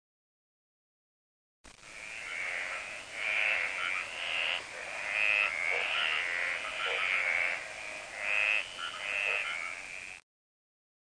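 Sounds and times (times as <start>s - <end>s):
frog chorus of trilling pulsed notes: 1.9s - 10.2s.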